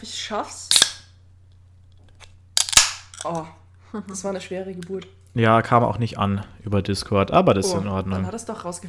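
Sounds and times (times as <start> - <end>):
speech: 0.0 - 0.8, 3.2 - 8.8
low steady hum: 0.0 - 8.8
empty aluminium drink can being crushed: 2.6 - 3.3.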